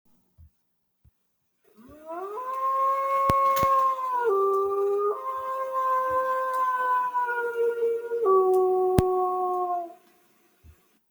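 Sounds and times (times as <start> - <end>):
wolf howling: 1.8 - 10.0.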